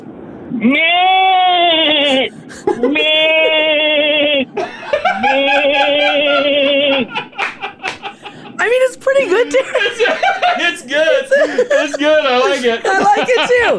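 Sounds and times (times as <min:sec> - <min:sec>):
speech: 0:00.5 - 0:01.1, 0:02.2 - 0:03.3, 0:09.1 - 0:13.7
man imitating goat bleats: 0:00.7 - 0:02.3, 0:02.9 - 0:04.5
laughter: 0:01.8 - 0:13.7.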